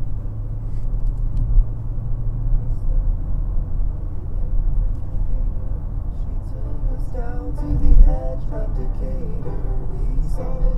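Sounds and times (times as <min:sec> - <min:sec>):
car engine running with traction control switched on: 0:00.0 - 0:10.7.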